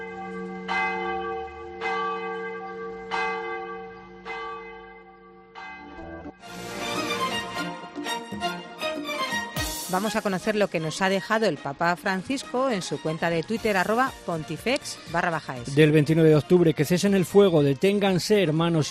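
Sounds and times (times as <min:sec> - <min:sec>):
cathedral bells tolling and pealing: 0:00.0 - 0:07.9
speech: 0:09.9 - 0:18.8.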